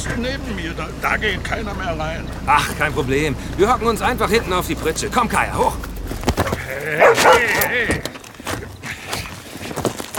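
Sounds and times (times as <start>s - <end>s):
speech: 0.0s - 8.0s
movement: 1.1s - 10.1s
dog barking and yelping: 6.9s - 7.8s.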